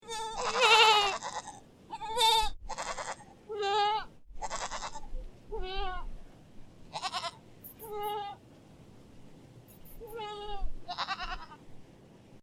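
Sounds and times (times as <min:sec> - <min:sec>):
various baby goats bleating: 0:00.0 - 0:06.1, 0:06.9 - 0:08.4, 0:10.0 - 0:11.6.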